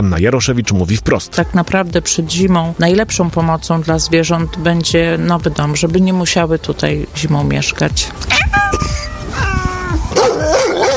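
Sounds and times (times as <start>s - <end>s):
speech: 0.0s - 9.0s
dogs barking and yelping at an animal shelter: 8.3s - 10.9s.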